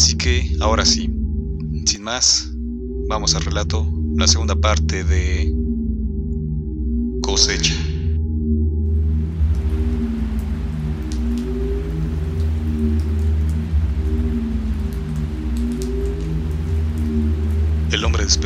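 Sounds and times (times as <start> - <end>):
low rumbling hum: 0.0 - 18.4
speech: 0.2 - 1.1, 2.0 - 2.5, 3.1 - 5.6, 7.3 - 7.9, 18.3 - 18.4
rain drumming on the sheet-metal roof of a makeshift home: 9.0 - 18.4.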